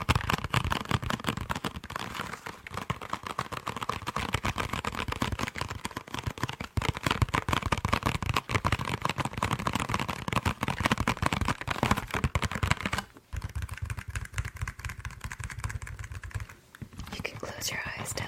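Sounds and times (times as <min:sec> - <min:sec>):
typing on a keyboard: 0:00.0 - 0:18.2.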